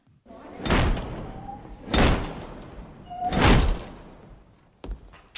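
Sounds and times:
sharp whooshing clunks of a magical device putting out street lights: 0.3s - 4.4s.

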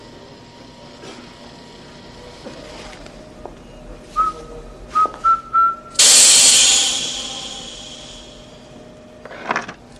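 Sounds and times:
person whistling a tune: 4.2s - 6.0s
hissing stun gas spray: 6.0s - 8.5s.

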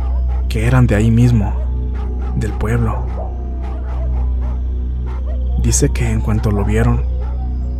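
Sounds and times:
dogs barking: 0.0s - 7.7s
speech: 0.5s - 1.6s, 2.4s - 3.2s, 5.6s - 7.1s.

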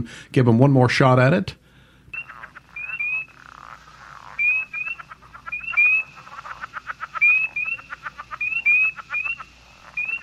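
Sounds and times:
speech: 0.0s - 1.6s
frog calling with clicking pulses and chirpy notes: 2.1s - 10.2s.

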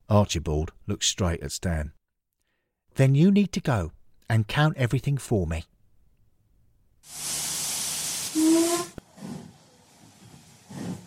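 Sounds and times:
speech: 0.1s - 2.0s, 3.0s - 5.7s, 7.0s - 7.4s
train steam hissing at Watford Junction station: 7.1s - 11.0s
whistle-like tone rising through steam: 8.4s - 9.0s.

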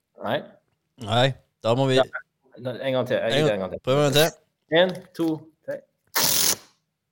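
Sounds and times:
speech: 0.2s - 5.9s
piece of tape pulled in a crackling rip: 6.1s - 6.8s.

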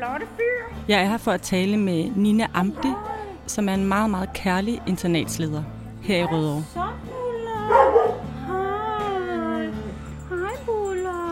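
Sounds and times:
speech: 0.0s - 6.9s
several dogs at an animal shelter barking and yelping in chorus: 2.7s - 8.4s, 9.2s - 11.3s.

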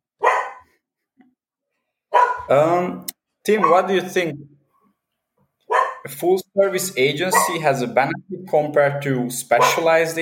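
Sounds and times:
dog barking at a squirrel: 0.2s - 0.8s, 2.1s - 2.5s, 3.6s - 3.9s, 5.7s - 6.1s, 7.3s - 7.6s, 9.6s - 9.9s
speech: 2.5s - 4.5s, 6.1s - 10.2s.

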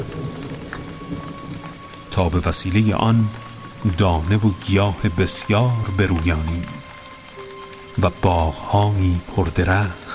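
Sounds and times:
heavy rain pouring: 0.0s - 10.1s
speech: 2.2s - 6.8s, 8.0s - 10.1s.

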